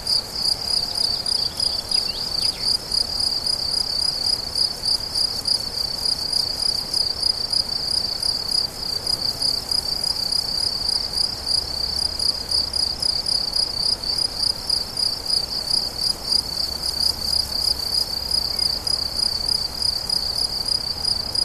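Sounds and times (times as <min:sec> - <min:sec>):
crickets trilling: 0:00.0 - 0:21.4.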